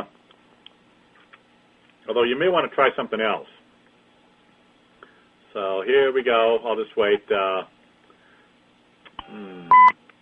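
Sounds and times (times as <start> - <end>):
speech: 2.1 - 3.6, 5.6 - 7.8, 9.3 - 9.5
electronic beep on a phone line signalling a caller joining: 9.2 - 10.0.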